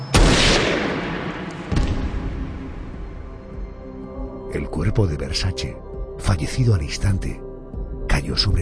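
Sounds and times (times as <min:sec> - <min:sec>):
gunshots fired at range at a house entrance: 0:00.1 - 0:02.6
speech: 0:04.5 - 0:07.4, 0:08.2 - 0:08.5.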